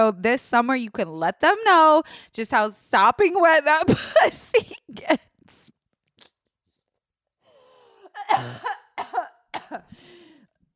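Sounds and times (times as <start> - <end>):
speech: 0.0 - 5.3, 8.3 - 10.2
harsh coughing: 8.0 - 10.0.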